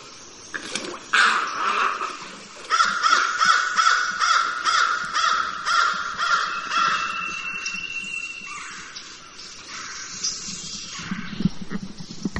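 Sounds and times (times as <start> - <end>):
snowy egret Egretta thula calling: 1.1 - 10.2
faint steady high tone: 6.4 - 9.6.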